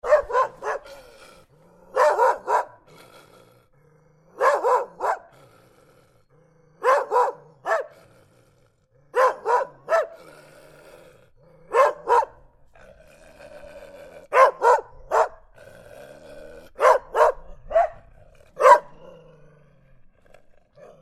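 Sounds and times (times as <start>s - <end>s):
angry dog barking and growling: 0.0s - 21.0s.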